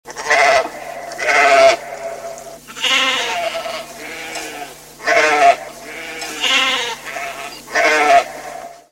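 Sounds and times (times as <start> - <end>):
sheep: 0.1 - 8.9.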